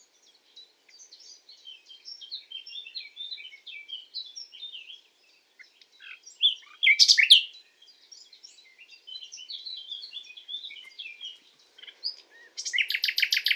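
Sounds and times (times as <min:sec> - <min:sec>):
common nightingale Luscinia megarhynchos singing: 0:00.0 - 0:13.5.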